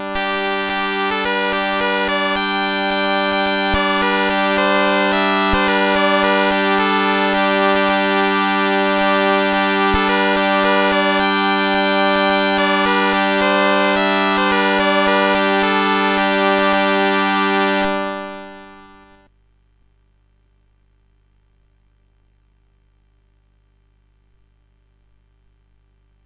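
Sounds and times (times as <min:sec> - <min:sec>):
SID CSG8580R5 sound chip music: 0:00.0 - 0:19.2.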